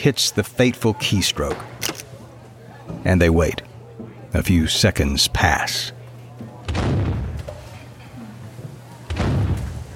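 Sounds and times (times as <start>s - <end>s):
speech: 0.0s - 2.0s, 2.9s - 3.7s, 4.3s - 6.0s
cannon shots played in an office when a browser is downloaded: 6.7s - 7.5s, 9.1s - 9.9s.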